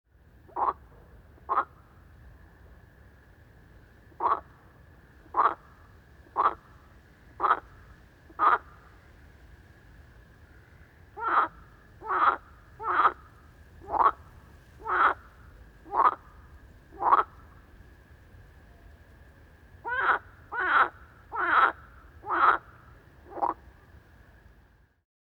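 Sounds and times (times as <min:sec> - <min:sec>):
toads and frogs calling at night: 0:00.4 - 0:03.4, 0:04.0 - 0:18.1, 0:19.6 - 0:24.3.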